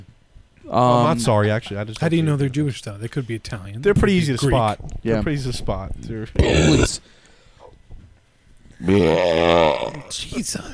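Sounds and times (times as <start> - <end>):
speech: 0.6 - 7.2, 8.8 - 10.7
long loud forced burp: 6.4 - 7.0, 8.8 - 10.1.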